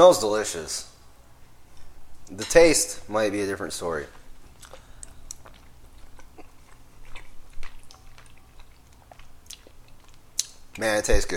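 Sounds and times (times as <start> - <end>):
speech: 0.0 - 0.9, 2.3 - 4.2, 10.8 - 11.3
low steady hum: 0.0 - 11.3
biting and chewing chicken and rice with hot pepper sauce: 4.1 - 10.8.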